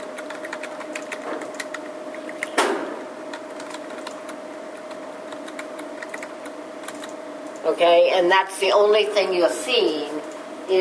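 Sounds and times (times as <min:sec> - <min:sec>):
typing on a keyboard: 0:00.0 - 0:02.6, 0:03.3 - 0:07.2
steady faint hum: 0:00.0 - 0:10.7
speech: 0:07.7 - 0:10.7.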